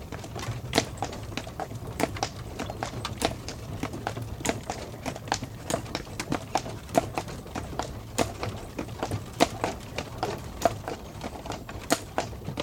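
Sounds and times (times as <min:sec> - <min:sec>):
horse hooves clip-clopping: 0:00.0 - 0:12.6.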